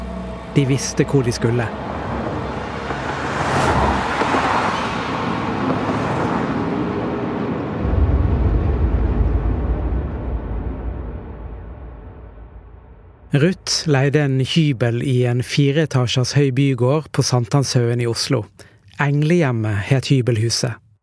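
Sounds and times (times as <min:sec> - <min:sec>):
deeper engine drone: 0:00.0 - 0:03.4, 0:07.4 - 0:13.4
car engines starting and revving in the evening: 0:00.0 - 0:08.4
speech: 0:00.6 - 0:02.0, 0:13.4 - 0:20.8.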